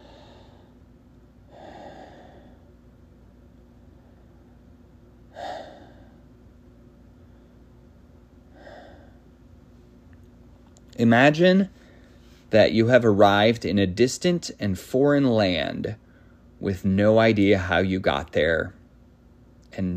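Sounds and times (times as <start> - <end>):
slow deep breaths: 0.0 - 2.8, 4.0 - 6.4, 8.5 - 9.3, 11.7 - 12.5, 16.0 - 16.6
faint steady hum: 0.0 - 19.9
speech: 11.0 - 11.8, 12.5 - 16.0, 16.6 - 18.8, 19.7 - 19.9.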